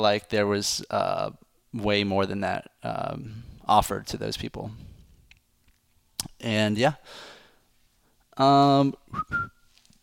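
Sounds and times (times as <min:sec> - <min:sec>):
speech: 0:00.0 - 0:04.9, 0:06.3 - 0:07.3, 0:08.4 - 0:09.5
person whistling: 0:09.1 - 0:09.7.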